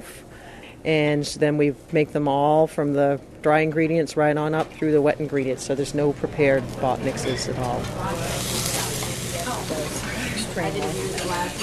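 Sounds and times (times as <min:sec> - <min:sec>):
speech: 0:00.8 - 0:08.5
whole-grain pancakes sizzling on a restaurant griddle while being flipped: 0:08.0 - 0:11.6.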